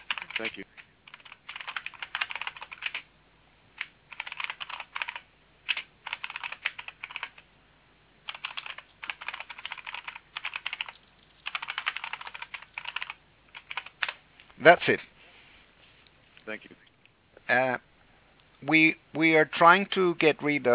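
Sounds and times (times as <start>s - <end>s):
typing on a computer keyboard: 0.0s - 3.1s, 3.8s - 7.5s, 8.3s - 14.2s
speech: 0.4s - 0.9s, 14.6s - 15.1s, 17.5s - 17.8s, 18.6s - 20.7s.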